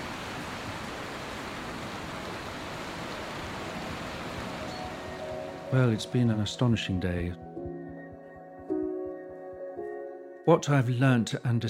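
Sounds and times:
river in full spate rushing beyond a wall: 0.0 - 6.1
speech: 5.7 - 7.5, 10.5 - 11.6.

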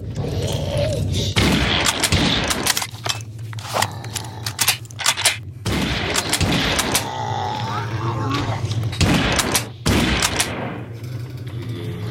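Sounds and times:
steady video game hum: 0.0 - 12.1
hunting rifle shots in a video game: 1.4 - 2.9, 5.0 - 7.1, 9.0 - 10.8.

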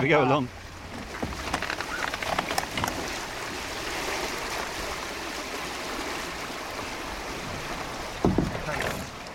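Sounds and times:
water rushing and splashing as a small sailing catamaran cuts along: 0.0 - 9.3.

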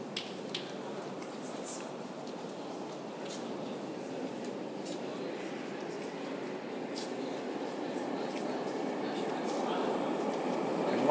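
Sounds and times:
faint indistinct voices: 0.6 - 11.0
train approaching a station platform: 3.8 - 11.0.

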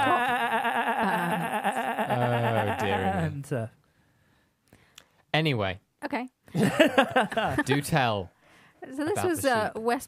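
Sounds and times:
laughter: 0.0 - 3.4, 6.6 - 8.1
person imitating a sheep bleat: 0.0 - 3.4
speech: 3.4 - 3.8, 5.4 - 10.0.

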